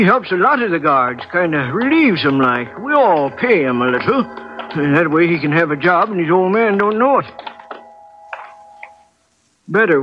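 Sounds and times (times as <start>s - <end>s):
speech: 0.0s - 7.6s, 9.7s - 10.0s
clock ticking: 0.0s - 7.9s
faint steady hum: 0.0s - 10.0s.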